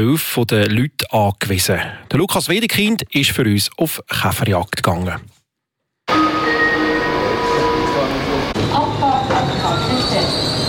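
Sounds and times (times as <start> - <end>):
speech: 0.0 - 5.4, 6.1 - 6.3
passenger train wheels and brakes squealing: 6.1 - 10.6.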